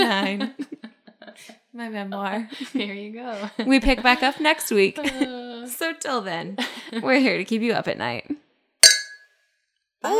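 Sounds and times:
speech: 1.4s - 8.3s
glass clink: 8.8s - 9.2s.

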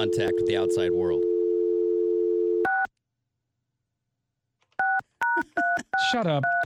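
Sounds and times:
speech: 0.0s - 1.3s, 5.5s - 6.6s
telephone dial tone: 1.2s - 2.9s
dual-tone telephone keypad dialing beeps: 4.8s - 6.6s.

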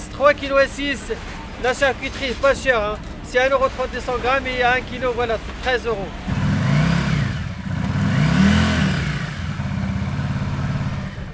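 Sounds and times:
speech: 0.2s - 6.3s
motorcycle engine revving and idling: 4.1s - 11.3s.

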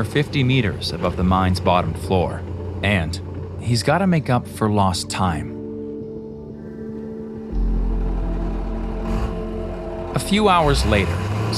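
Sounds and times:
heavy vehicle engine revving and driving out of a mine's mechanic shop: 0.0s - 4.6s, 7.5s - 11.5s
speech: 0.0s - 5.6s, 10.2s - 11.5s.

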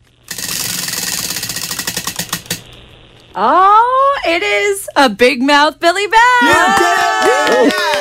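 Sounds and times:
prize wheel spinning with clicking ticks: 0.3s - 2.6s
speech: 3.4s - 7.9s.

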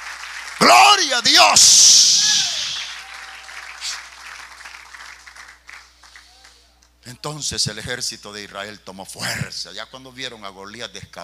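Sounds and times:
church congregation applauding: 0.0s - 6.6s
speech: 0.6s - 2.5s, 7.1s - 11.2s.

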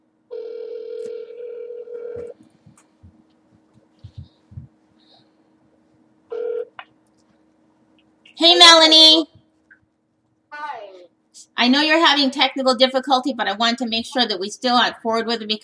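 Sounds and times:
telephone line tone: 0.3s - 2.4s, 6.3s - 6.7s
speech: 8.4s - 9.3s, 11.6s - 15.6s.

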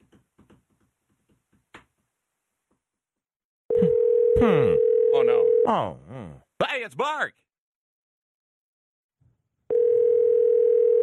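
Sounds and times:
speech: 4.4s - 4.9s, 5.7s - 7.4s
telephone dial tone: 9.7s - 11.0s.

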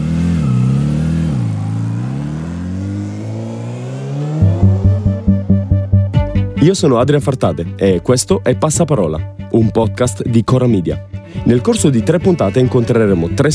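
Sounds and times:
warmed-up motorcycle engine revving in a garage: 0.0s - 6.5s
speech: 6.6s - 13.5s.

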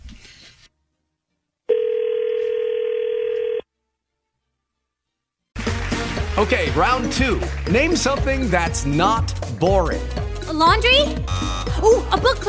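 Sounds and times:
loud steady telephone dial tone: 1.7s - 3.6s
speech: 6.4s - 12.4s.

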